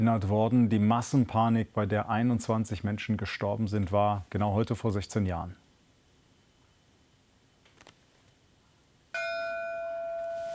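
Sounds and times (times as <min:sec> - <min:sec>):
speech: 0:00.0 - 0:05.6
memorial bell strike at a memorial event in Duisburg: 0:09.2 - 0:10.5.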